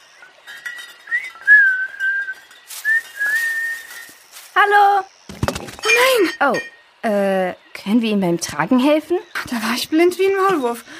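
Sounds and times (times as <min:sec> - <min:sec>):
person whistling a short melodic tune: 0:01.1 - 0:04.2
speech: 0:04.6 - 0:05.1, 0:05.9 - 0:10.9.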